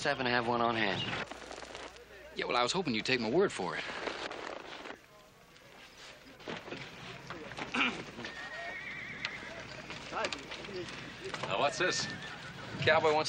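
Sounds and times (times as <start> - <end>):
speech: 0.0 - 1.4, 2.4 - 4.0, 10.2 - 13.2
horse hooves clopping: 0.5 - 13.2
horse whinnying: 7.7 - 13.1.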